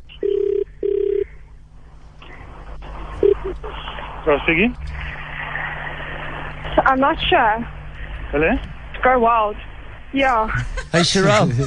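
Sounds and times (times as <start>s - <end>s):
phone line noise and hiss: 0.1s - 1.4s, 3.2s - 3.6s
electronic phone ringback tone: 0.2s - 1.3s
speech: 4.2s - 5.0s, 6.9s - 11.6s
laughter: 10.5s - 11.6s.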